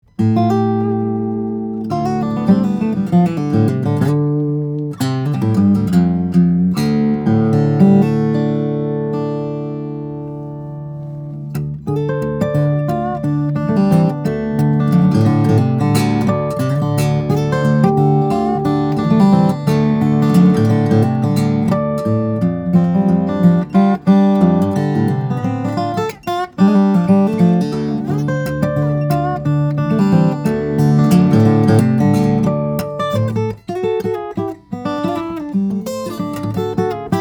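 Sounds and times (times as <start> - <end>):
Martin 000-42 Cutaway guitar of Madagascar rosewood and Italian alpine spruce: 0.0 - 37.1.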